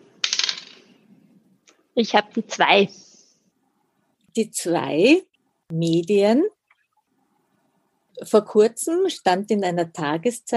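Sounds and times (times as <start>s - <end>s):
die clattering across a hard tabletop: 0.2s - 0.9s
speech: 2.0s - 3.1s, 4.4s - 6.6s, 8.2s - 10.5s.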